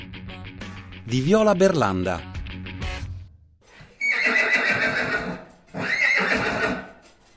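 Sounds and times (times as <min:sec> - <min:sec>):
speech: 0:01.1 - 0:02.3
young filly whinnying on a ranch in California: 0:04.0 - 0:07.0
horse hoof clops: 0:04.8 - 0:07.3.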